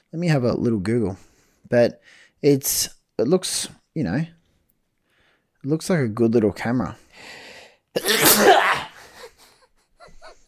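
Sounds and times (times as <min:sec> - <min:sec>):
speech: 0:00.1 - 0:04.4, 0:05.6 - 0:07.4, 0:08.0 - 0:08.8
person sneezing: 0:08.0 - 0:09.3.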